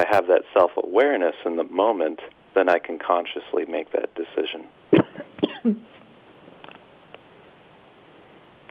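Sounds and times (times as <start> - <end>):
speech: 0.1 - 5.0, 5.7 - 5.9
short harsh coughs: 4.9 - 5.9.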